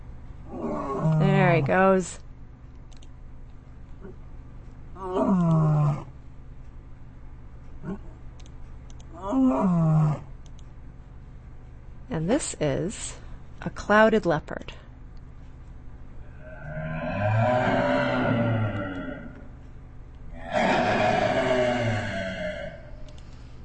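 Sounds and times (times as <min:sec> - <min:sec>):
lion roaring: 0:00.5 - 0:01.7, 0:05.0 - 0:06.1, 0:09.2 - 0:10.3, 0:16.3 - 0:19.5, 0:20.3 - 0:23.1
speech: 0:01.5 - 0:02.2, 0:05.0 - 0:05.7, 0:12.2 - 0:14.8.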